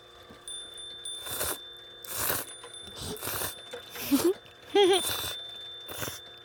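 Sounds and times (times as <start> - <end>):
slurping of plain cold somen noodles: 1.2 - 4.4.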